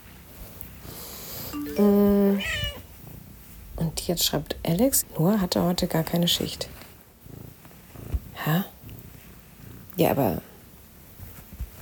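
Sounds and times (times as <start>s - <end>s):
speech: 1.8s - 2.0s, 4.0s - 6.8s, 10.0s - 10.5s
domestic cat meowing: 2.3s - 2.8s
domestic cat purring: 5.2s - 11.1s.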